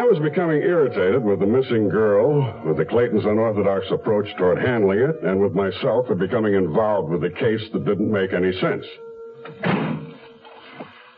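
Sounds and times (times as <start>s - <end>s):
speech: 0.1s - 9.9s
heavy gilded doors thudding shut: 9.4s - 10.2s.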